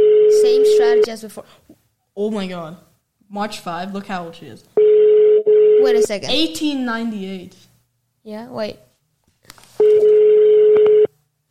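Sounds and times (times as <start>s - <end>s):
telephone line tone while placing a call: 0.0s - 0.4s, 4.8s - 5.9s, 9.8s - 11.1s
speech: 0.8s - 4.8s, 5.8s - 8.9s.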